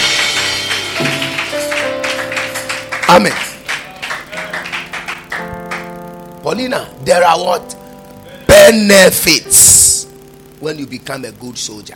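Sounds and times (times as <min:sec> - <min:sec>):
audience clapping: 0:00.0 - 0:06.2
sustained keyboard chords: 0:00.0 - 0:11.9
speech: 0:03.1 - 0:03.5, 0:06.5 - 0:07.8, 0:08.6 - 0:10.0, 0:10.6 - 0:11.9
person calling out: 0:08.2 - 0:09.0.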